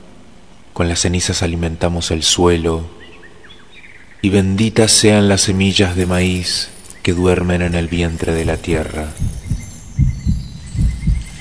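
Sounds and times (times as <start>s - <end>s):
soft hiss: 0.0s - 11.3s
speech: 0.8s - 3.1s, 4.2s - 9.4s
heartbeat thumping in low double beats: 8.1s - 11.3s.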